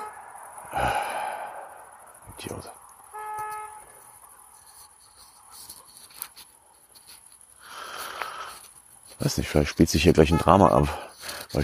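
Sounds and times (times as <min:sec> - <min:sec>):
car horn honking: 0:00.0 - 0:00.3, 0:03.1 - 0:04.0, 0:10.0 - 0:11.0
street noise: 0:00.0 - 0:11.6
speech: 0:02.4 - 0:02.8, 0:09.2 - 0:11.6
scattered clicks and rustling: 0:02.8 - 0:09.5.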